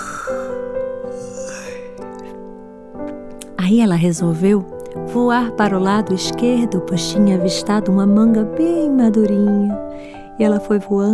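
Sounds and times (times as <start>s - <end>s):
person imitating a long drawn-out yawn: 0.0s - 2.0s
speech: 3.6s - 11.1s.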